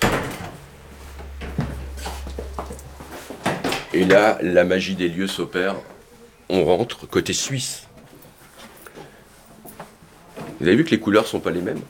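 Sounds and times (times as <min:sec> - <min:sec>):
door opening and closing: 0:00.0 - 0:04.0
steady low hum: 0:00.0 - 0:06.5
speech: 0:03.9 - 0:05.9, 0:06.5 - 0:07.9, 0:10.6 - 0:11.8.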